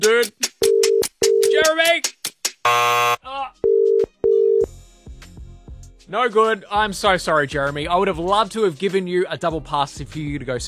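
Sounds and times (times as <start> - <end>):
speech: 0.0 - 0.9, 6.2 - 10.6
harsh electronic buzz: 2.7 - 3.2
telephone ringback tone of an outgoing call: 2.7 - 4.7.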